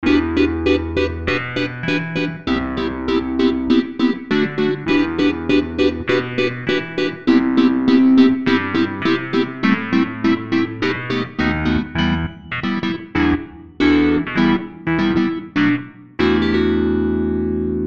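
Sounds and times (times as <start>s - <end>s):
Hohner Pianet N electric piano: 0.0s - 17.8s.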